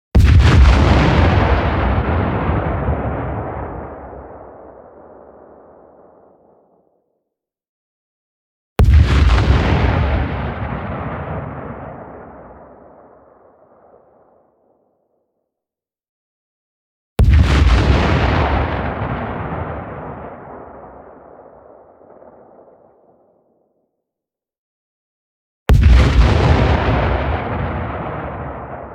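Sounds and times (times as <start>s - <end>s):
long super massive explosion: 0.2s - 6.6s, 8.8s - 14.2s, 17.2s - 23.2s, 25.7s - 28.9s.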